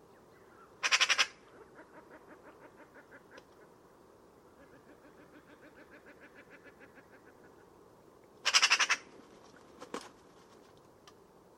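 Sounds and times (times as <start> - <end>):
low background hiss: 0.0 - 11.5
bird calling grating squawks: 0.8 - 1.4, 8.4 - 9.1.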